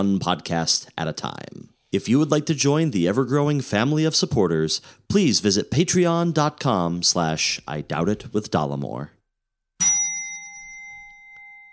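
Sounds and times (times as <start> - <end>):
speech: 0.0 - 9.2
single bright metallic bell strike ringing: 9.8 - 11.7.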